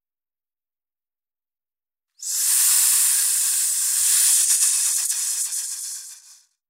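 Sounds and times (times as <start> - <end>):
steady loud broadband hiss: 2.2 - 6.4.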